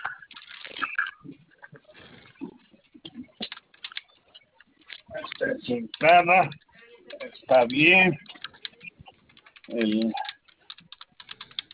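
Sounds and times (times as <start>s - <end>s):
computer keyboard keys being pressed: 3.4s - 4.2s, 4.8s - 11.7s
speech: 5.4s - 6.6s, 7.5s - 8.2s, 9.8s - 10.2s.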